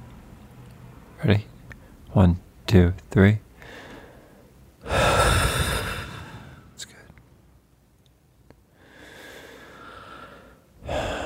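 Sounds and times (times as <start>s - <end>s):
speech: 1.2s - 1.5s, 2.1s - 3.8s
person breathing in: 3.6s - 6.8s, 8.7s - 11.2s.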